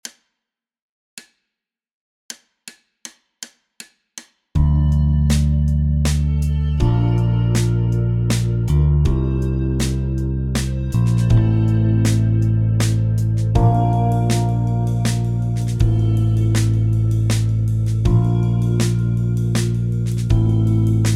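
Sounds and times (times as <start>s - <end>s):
backing track at 80 bpm: 4.6s - 21.1s.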